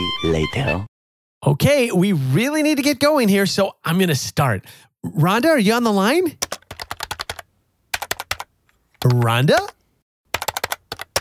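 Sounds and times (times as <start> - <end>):
speech: 0.2 - 6.6, 9.0 - 9.8
typing on a computer keyboard: 6.4 - 11.2.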